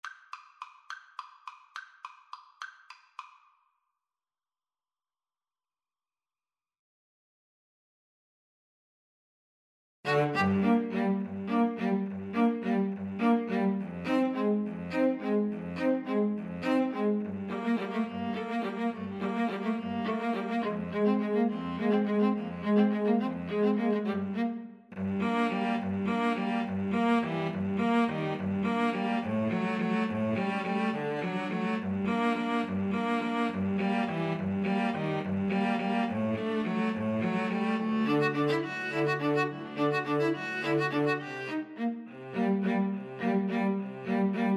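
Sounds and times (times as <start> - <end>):
string trio playing: 10.1 - 44.5.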